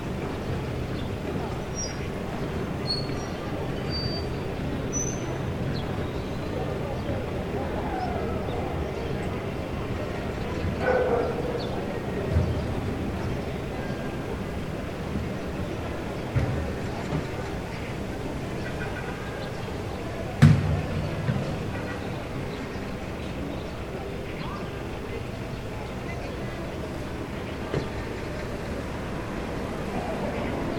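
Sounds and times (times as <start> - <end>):
faint voices in a market parking lot: 0.0 - 30.7
steady low hum of traffic and idling vehicles in a market parking lot: 0.0 - 30.7
dog barking: 10.8 - 11.8.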